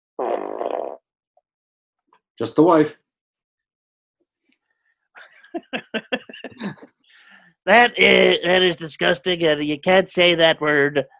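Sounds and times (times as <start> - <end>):
fart sound effect: 0.2 - 1.0
speech: 2.4 - 3.0, 5.5 - 7.0, 7.6 - 11.1
laughter: 5.2 - 6.9, 7.7 - 9.4.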